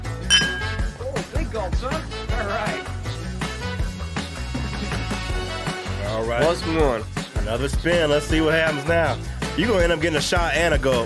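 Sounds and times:
music: 0.0s - 11.0s
glasses clinking together in a toast: 0.3s - 1.0s
speech: 6.2s - 11.0s.

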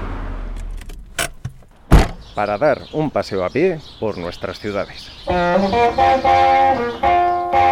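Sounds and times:
car engine idling: 0.0s - 2.4s
keys jingling: 0.6s - 2.2s
loud clunk: 0.6s - 2.4s
speech: 2.4s - 7.6s.

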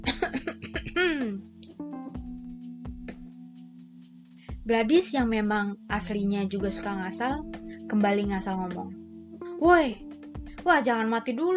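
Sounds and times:
coughing fit: 0.0s - 1.4s
speech: 4.7s - 9.0s, 9.6s - 11.5s.

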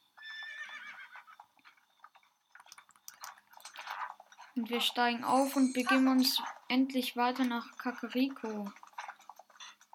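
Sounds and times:
video game horse hooves clip-clopping: 0.0s - 9.9s
video game horse whinnying: 0.2s - 1.8s
speech: 4.6s - 8.8s.

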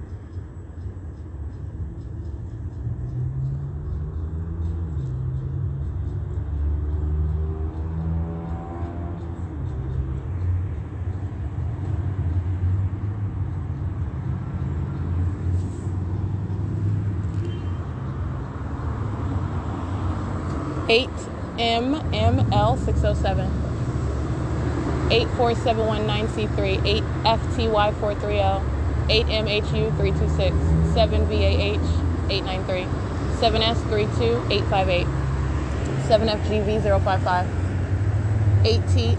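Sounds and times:
city bus engine drone: 0.0s - 39.1s
speech: 20.9s - 23.6s, 25.1s - 35.2s, 36.1s - 37.6s, 38.6s - 39.1s.

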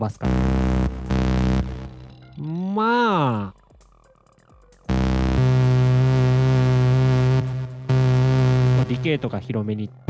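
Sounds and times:
speech: 0.0s - 0.6s, 2.4s - 3.6s, 8.9s - 10.0s
sustained analog synthesizer tone rich in buzzy harmonics: 0.2s - 2.6s, 4.9s - 10.0s.

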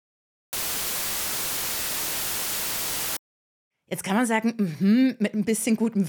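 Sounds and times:
steady white noise hiss: 0.6s - 3.2s
speech: 3.9s - 6.0s.

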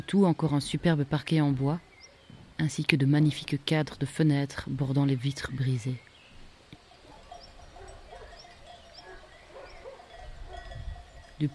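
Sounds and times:
outdoor ambience: 0.0s - 11.5s
speech: 0.1s - 1.9s, 2.6s - 6.1s, 11.4s - 11.5s
low rumble of sheep hooves: 6.0s - 11.5s
flock of sheep bells clanking: 7.1s - 11.5s.

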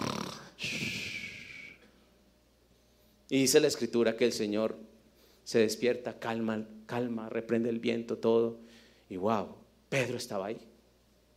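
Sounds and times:
person imitating snoring with their voice: 0.0s - 1.8s
speech: 3.3s - 10.7s.

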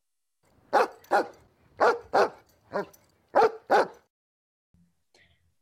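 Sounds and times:
dog barking: 0.7s - 4.1s.

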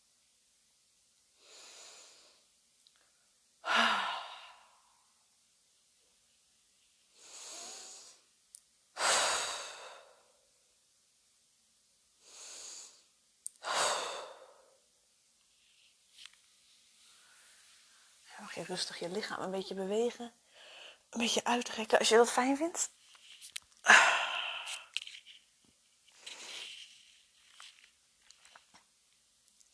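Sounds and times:
slow breathing in and out during a guided meditation: 1.4s - 5.0s, 7.1s - 8.3s, 9.0s - 10.4s, 12.2s - 14.9s, 16.7s - 18.3s, 20.4s - 21.1s, 23.8s - 25.0s
speech: 18.6s - 20.4s, 21.1s - 24.0s.

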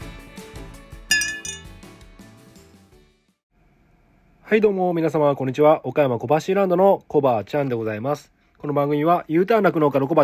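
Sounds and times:
light rhythmic musical backing: 0.0s - 3.1s
glasses clinking in a milk toast: 1.1s - 1.7s
speech: 4.5s - 10.2s.

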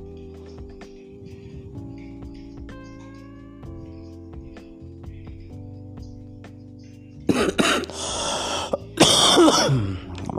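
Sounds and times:
harsh raspy coughing fit: 7.3s - 8.0s, 8.7s - 10.2s.

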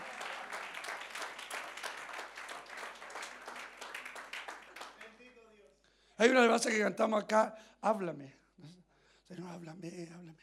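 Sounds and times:
church audience applauding: 0.0s - 5.3s
speech: 6.2s - 8.4s, 9.3s - 10.4s.

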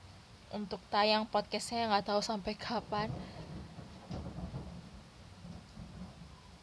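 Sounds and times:
soft hiss of rain: 0.0s - 6.6s
speech: 0.5s - 3.4s
low rolling thunder: 2.8s - 6.6s.

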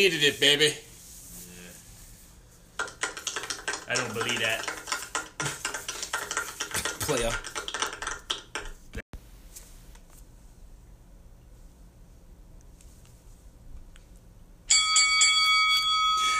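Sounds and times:
speech: 0.0s - 0.9s, 7.1s - 7.5s
clattering noise: 2.8s - 9.0s
loud bell ringing with rapid repeated strikes: 14.7s - 16.3s.

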